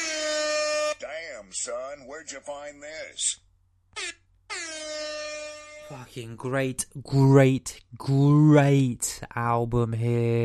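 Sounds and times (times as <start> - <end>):
air horn sound effect blasts: 0.0 - 1.0, 4.0 - 6.0
speech: 1.5 - 4.1, 5.9 - 10.4.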